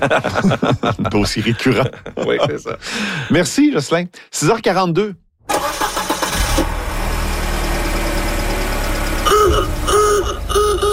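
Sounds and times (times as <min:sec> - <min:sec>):
laughter: 0:00.0 - 0:03.2
speech: 0:00.0 - 0:05.7
old car engine cranking and idling: 0:05.5 - 0:10.9.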